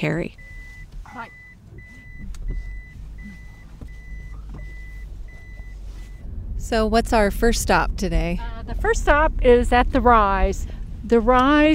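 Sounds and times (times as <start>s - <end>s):
speech: 0.0s - 0.4s, 1.1s - 1.4s, 6.6s - 11.7s
low rumble of Prius hybrid car loaded with produce: 0.0s - 11.7s
electronic reversing beeps: 0.4s - 6.2s.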